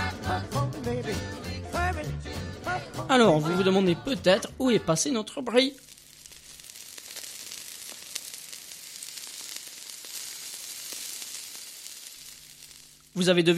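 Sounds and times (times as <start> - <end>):
speech: 0.9 - 5.9, 13.2 - 13.5
sausages sizzling as they fry in a pan: 5.4 - 13.5.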